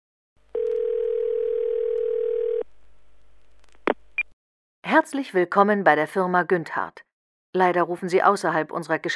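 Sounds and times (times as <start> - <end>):
telephone line tone: 0.5 - 2.7
speech: 4.9 - 9.1.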